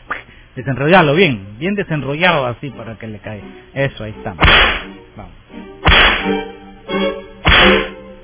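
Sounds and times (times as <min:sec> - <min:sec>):
speech: 0:00.6 - 0:06.5
whip lashes cracking: 0:04.4 - 0:04.9, 0:05.8 - 0:06.4, 0:07.5 - 0:08.0.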